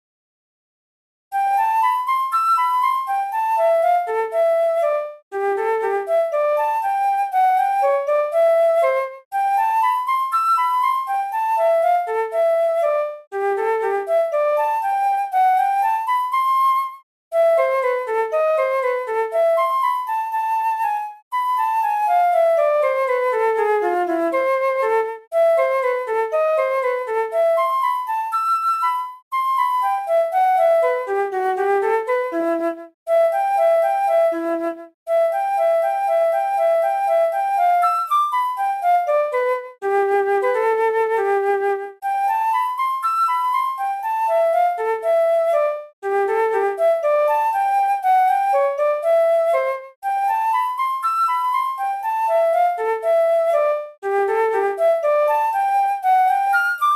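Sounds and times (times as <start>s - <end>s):
flute playing exercises: 1.3s - 56.9s.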